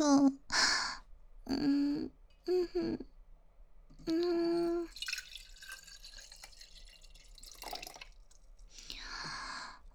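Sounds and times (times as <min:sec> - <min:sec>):
speech: 0:00.0 - 0:00.6, 0:02.5 - 0:03.1, 0:04.1 - 0:04.6
water pouring into a cup: 0:04.7 - 0:08.7.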